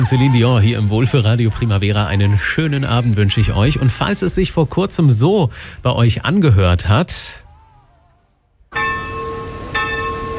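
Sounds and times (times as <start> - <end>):
speech: 0.0 - 7.4
church bells ringing for a wedding: 8.7 - 10.3.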